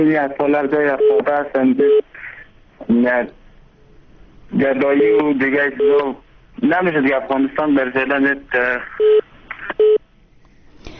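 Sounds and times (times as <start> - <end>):
speech: 0.0 - 2.1, 2.9 - 3.4, 4.5 - 9.2
telephone line tone after a dropped call: 9.0 - 10.0.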